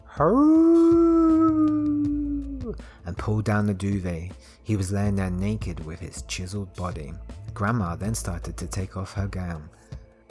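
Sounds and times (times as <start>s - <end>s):
man howling like a wolf: 0.1s - 2.8s
speech: 0.2s - 1.7s, 2.7s - 9.9s.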